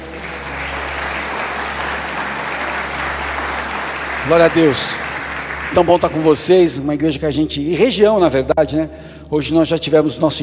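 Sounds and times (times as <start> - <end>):
large church audience applause: 0.0 - 7.0
speech: 4.3 - 5.0, 5.7 - 10.4.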